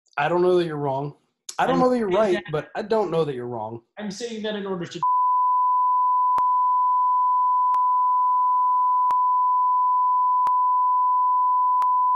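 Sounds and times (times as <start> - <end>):
speech: 0.2 - 5.2
laughter: 1.6 - 3.1
steady censor bleep tone at one pitch: 5.0 - 12.1.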